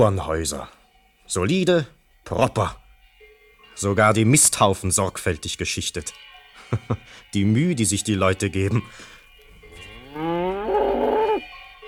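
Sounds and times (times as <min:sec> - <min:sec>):
speech: 0:00.0 - 0:02.8, 0:03.8 - 0:09.1, 0:10.2 - 0:10.5
cattle mooing in farm country on a summer evening: 0:09.8 - 0:11.5.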